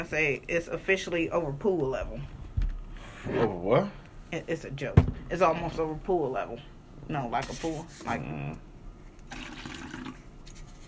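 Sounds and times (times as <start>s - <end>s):
speech: 0.0s - 2.4s, 3.2s - 8.6s
steady low hum: 0.0s - 10.8s
drink being poured: 9.2s - 10.4s.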